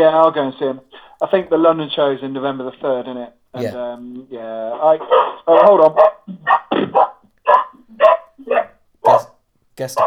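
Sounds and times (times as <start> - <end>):
speech: 0.0 - 6.6, 9.8 - 10.0
dog barking in the distance: 5.1 - 9.3.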